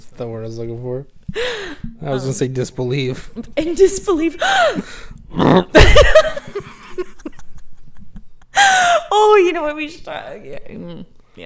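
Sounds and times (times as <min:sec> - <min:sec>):
speech: 0:00.0 - 0:06.3, 0:09.4 - 0:11.4
loud burp: 0:05.3 - 0:05.8
short rough vocal sound: 0:05.3 - 0:05.8.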